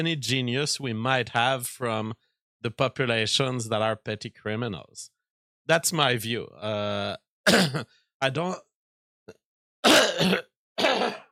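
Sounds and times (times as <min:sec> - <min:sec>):
speech: 0:00.0 - 0:08.7, 0:09.3 - 0:10.5
person coughing with harsh throat-clearing bursts: 0:07.5 - 0:07.9, 0:09.8 - 0:11.3.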